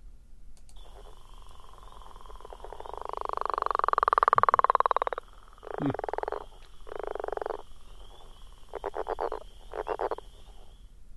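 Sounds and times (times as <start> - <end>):
frog calling: 0.8 - 10.9.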